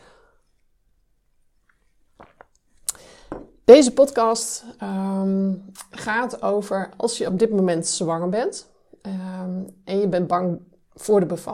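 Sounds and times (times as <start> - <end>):
sipping hot tea with slurping and swallowing: 1.6 - 3.0
speech: 3.7 - 11.5.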